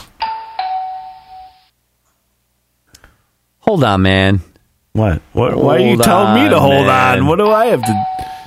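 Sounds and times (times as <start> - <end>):
two-note electronic doorbell chime: 0.2 - 1.7, 7.8 - 8.4
speech: 3.7 - 8.2.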